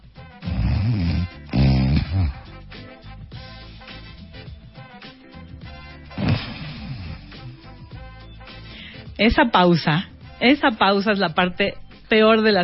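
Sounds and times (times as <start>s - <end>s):
person imitating snoring with their voice: 0.4s - 2.7s, 6.1s - 7.6s
speech: 9.2s - 12.6s.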